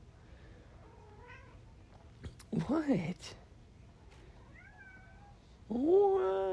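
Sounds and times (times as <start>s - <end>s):
cat meowing: 0.8s - 1.6s, 4.4s - 5.4s
speech: 2.5s - 3.4s, 5.7s - 6.4s.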